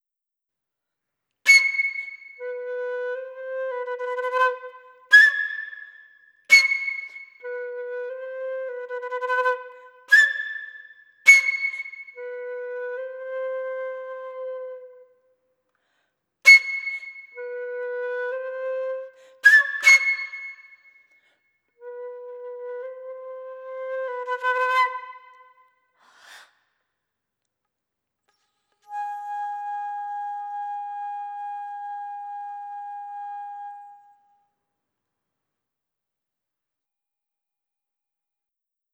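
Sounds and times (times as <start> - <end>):
flute: 1.5 - 15.3, 16.5 - 21.0, 21.8 - 25.8, 28.8 - 34.6.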